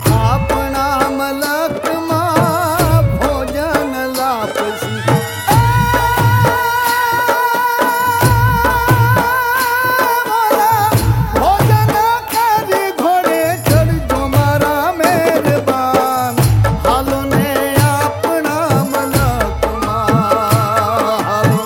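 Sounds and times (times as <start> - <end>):
Gujarati folk song: 0.0 - 21.6.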